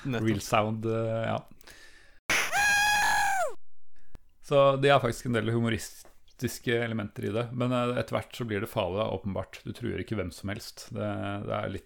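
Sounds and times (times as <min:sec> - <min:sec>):
speech: 0:00.0 - 0:01.8, 0:04.5 - 0:11.8
person giving a loud high-pitched dramatic scream: 0:02.3 - 0:03.6.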